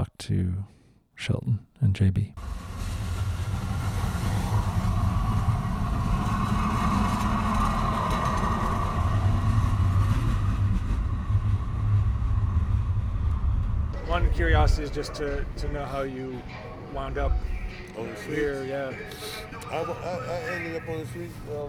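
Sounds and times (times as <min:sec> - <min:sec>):
speech: 0:00.2 - 0:02.6, 0:14.1 - 0:21.6
municipal railway streetcar rumbling along its track: 0:02.4 - 0:21.6
laughter: 0:14.0 - 0:21.6.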